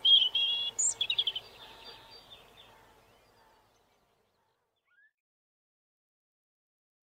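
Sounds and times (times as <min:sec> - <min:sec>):
robin singing: 0:00.0 - 0:05.1.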